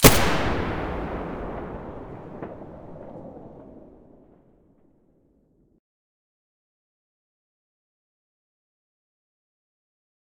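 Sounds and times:
G36 rifle muzzle blast: 0.0s - 3.9s.

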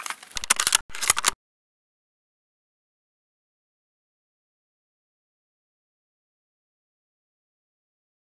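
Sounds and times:
SV98 rifle bolt action: 0.0s - 1.4s.

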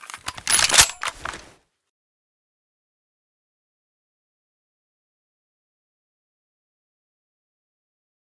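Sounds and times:
Galil rifle misfiring: 0.0s - 1.5s.

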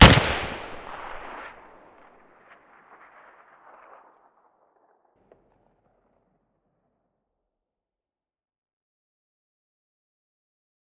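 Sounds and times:
SVD rifle muzzle gunshot: 0.0s - 1.3s.

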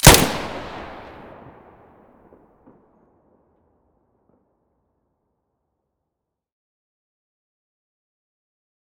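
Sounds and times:
weapon muzzle blast in stereo: 0.0s - 1.4s.

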